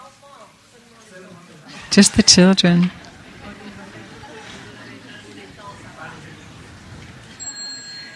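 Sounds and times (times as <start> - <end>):
murmur of soft voices: 0.0 - 8.1
speech: 2.0 - 3.0
small bell chiming: 7.4 - 8.1.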